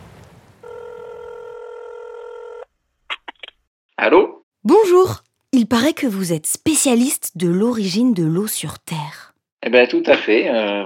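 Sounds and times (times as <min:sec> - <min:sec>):
telephone line tone: 0:00.6 - 0:02.7
speech: 0:04.0 - 0:04.3, 0:05.6 - 0:10.8.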